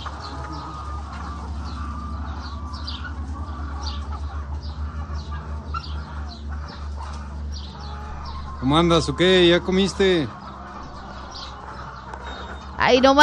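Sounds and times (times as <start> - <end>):
chickens chirping and clucking at a poultry farm: 0.0 - 13.2
steady low hum: 0.0 - 13.2
speech: 8.6 - 10.4, 12.9 - 13.2.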